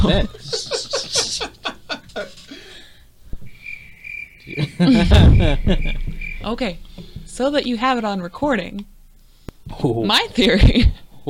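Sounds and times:
speech: 0:00.0 - 0:00.7, 0:04.8 - 0:06.8, 0:07.4 - 0:08.9, 0:09.8 - 0:11.2
people laughing: 0:00.0 - 0:02.6, 0:04.5 - 0:06.0
cricket chirping: 0:03.5 - 0:07.4
noisy rush: 0:05.0 - 0:09.3.

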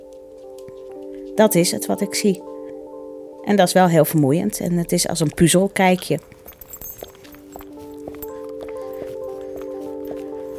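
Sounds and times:
footsteps walking outdoors to bus stop: 0:00.0 - 0:02.4, 0:04.5 - 0:10.5
speech: 0:01.4 - 0:02.5, 0:03.5 - 0:06.5.

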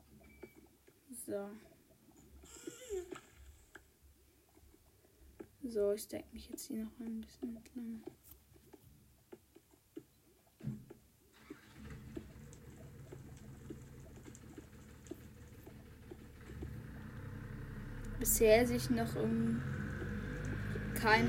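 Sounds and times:
speech: 0:01.3 - 0:01.7, 0:05.7 - 0:08.2, 0:18.3 - 0:19.8, 0:21.0 - 0:21.2
car passing by outside: 0:16.4 - 0:21.2.

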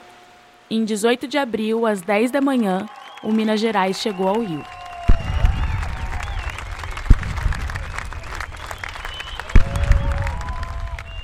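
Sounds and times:
speech: 0:00.7 - 0:04.8
large crowd applauding and cheering: 0:02.0 - 0:11.2
shouting voices: 0:02.1 - 0:06.6, 0:07.7 - 0:11.2
loud deep booms: 0:05.1 - 0:11.2.

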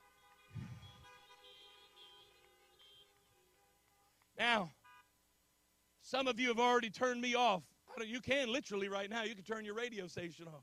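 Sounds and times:
car horn honking: 0:00.0 - 0:05.2
speech: 0:04.4 - 0:04.8, 0:06.1 - 0:10.6.

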